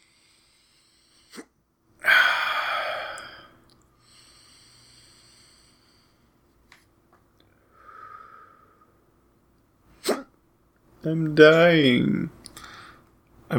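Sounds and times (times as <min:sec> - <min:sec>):
faint noise: 0:00.0 - 0:13.5
person hiccuping: 0:10.0 - 0:10.3
speech: 0:11.0 - 0:12.4.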